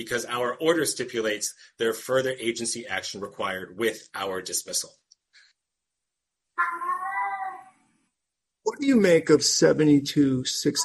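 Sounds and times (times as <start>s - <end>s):
speech: 0.0s - 5.0s, 8.7s - 10.8s
cat meowing: 6.6s - 7.7s.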